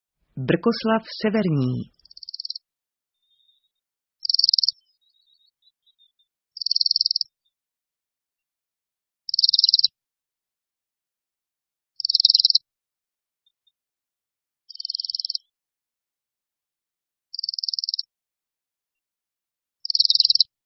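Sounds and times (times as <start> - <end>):
speech: 0.4 - 2.0
Bohemian waxwing trilling calls: 4.2 - 4.8, 6.6 - 7.3, 9.3 - 9.9, 12.0 - 12.6, 14.7 - 15.4, 19.9 - 20.5.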